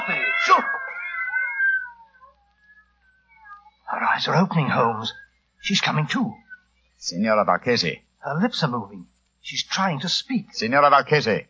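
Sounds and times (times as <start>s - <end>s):
several cats meowing and yowling: 0.0s - 5.2s
speech: 0.6s - 0.8s, 4.2s - 6.4s, 7.0s - 11.4s.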